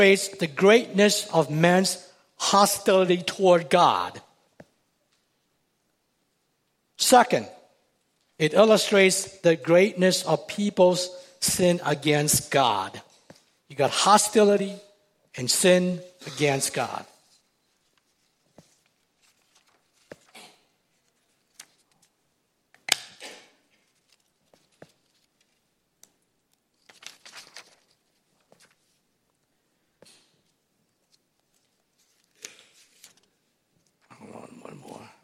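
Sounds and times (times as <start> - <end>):
speech: 0.0 - 4.2, 7.0 - 7.6, 8.4 - 13.0, 13.7 - 14.8, 15.4 - 17.1
sheets of paper being shuffled: 17.2 - 22.2, 23.7 - 25.7, 26.7 - 29.0, 31.0 - 34.0.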